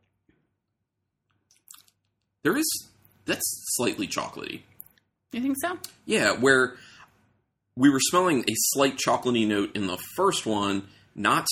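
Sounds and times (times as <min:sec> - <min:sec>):
person sipping a drink: 0:01.5 - 0:02.1
speech: 0:02.4 - 0:04.7, 0:05.3 - 0:06.9, 0:07.8 - 0:11.4.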